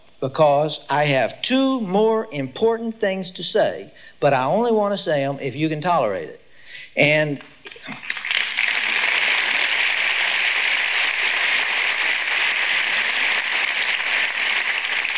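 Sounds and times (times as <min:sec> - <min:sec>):
speech: 0:00.2 - 0:06.4, 0:07.0 - 0:08.2
thin applause from a small audience at a Sunday school talk: 0:07.7 - 0:15.1.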